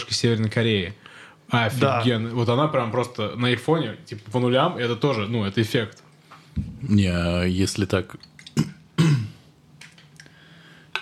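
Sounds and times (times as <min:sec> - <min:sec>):
speech: 0:00.1 - 0:06.0, 0:06.6 - 0:08.3
man coughing and clearing throat: 0:08.6 - 0:09.4.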